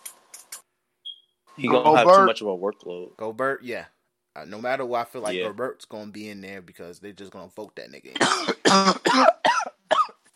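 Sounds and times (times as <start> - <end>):
speech: 1.6 - 9.4
person coughing harshly: 8.2 - 10.2.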